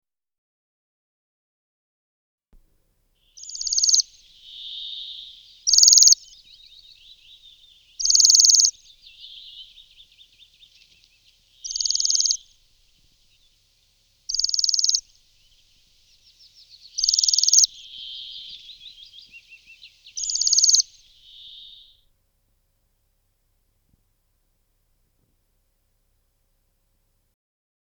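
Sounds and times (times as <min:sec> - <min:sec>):
waxwing singing: 0:03.3 - 0:22.0.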